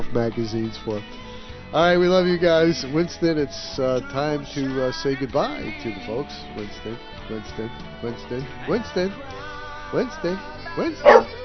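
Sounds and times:
speech: 0.2 - 11.4
dog barking and yipping: 11.0 - 11.4.

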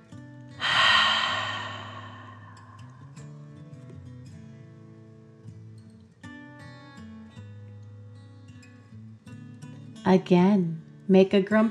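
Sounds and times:
deep breath taken as a calming exercise: 0.6 - 3.3
speech: 10.0 - 11.6.

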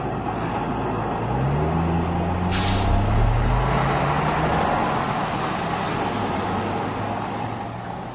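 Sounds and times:
heavy traffic rumbling on a bridge: 0.0 - 8.1
truck air brakes hissing: 2.4 - 4.0.

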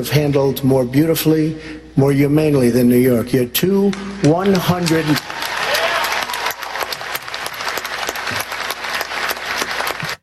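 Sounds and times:
speech: 0.0 - 5.2
crowd applauding: 4.2 - 10.2.

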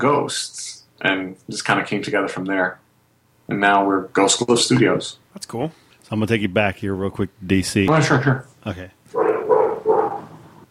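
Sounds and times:
speech: 0.0 - 2.8, 3.5 - 9.3
dog barking behind a closed door: 9.1 - 10.3.

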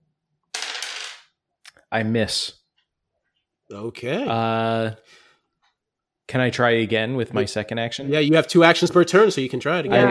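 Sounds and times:
two dice clattering and tumbling across a hard surface: 0.5 - 1.3
speech: 1.9 - 2.6, 3.7 - 5.2, 6.3 - 10.0.

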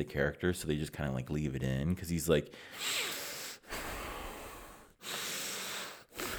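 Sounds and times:
speech: 0.0 - 3.2
voice imitating heavy labored breathing: 2.6 - 6.3.

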